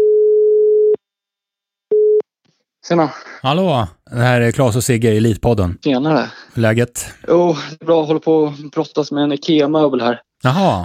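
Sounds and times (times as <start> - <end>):
ringback tone of an outgoing telephone call: 0.0 - 1.0
speech: 2.8 - 10.8.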